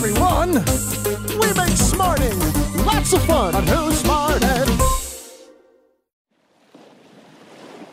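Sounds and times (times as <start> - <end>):
speech: 0.0 - 4.6
ocean waves washing and crashing against the shore: 6.7 - 7.9.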